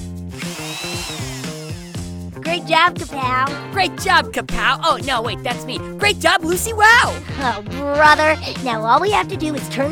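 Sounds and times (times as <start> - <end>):
power drill motor whining: 0.4 - 2.4
speech: 2.6 - 9.8.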